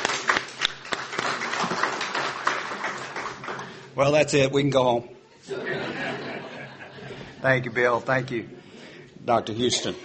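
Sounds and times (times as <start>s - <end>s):
crowd applauding: 0.0s - 4.0s
speech: 4.0s - 5.6s, 7.4s - 8.6s, 9.2s - 10.0s
laughter: 5.4s - 7.7s.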